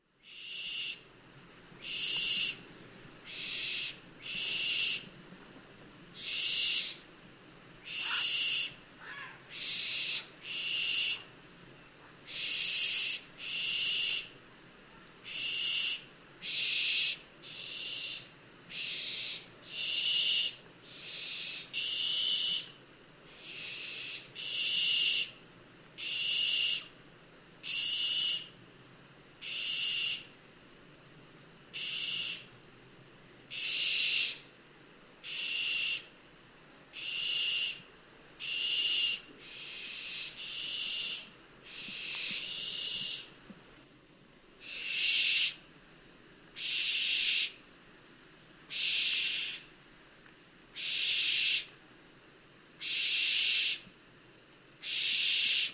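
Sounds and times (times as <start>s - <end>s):
barn owl call: 0.0s - 1.1s, 1.8s - 2.6s, 3.2s - 5.1s, 6.2s - 7.1s, 7.8s - 11.3s, 12.2s - 14.4s, 15.2s - 25.4s, 26.0s - 27.0s, 27.6s - 28.6s, 29.4s - 30.3s, 31.7s - 32.5s, 33.5s - 34.5s, 35.2s - 36.2s, 36.9s - 43.4s, 44.6s - 45.7s, 46.6s - 47.6s, 48.7s - 49.7s, 50.7s - 51.8s, 52.8s - 53.9s, 54.8s - 55.7s.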